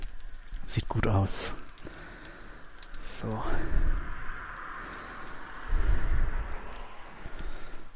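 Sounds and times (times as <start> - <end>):
meat sizzling on a grill: 0.0 - 7.9
speech: 0.7 - 1.6, 3.2 - 3.9.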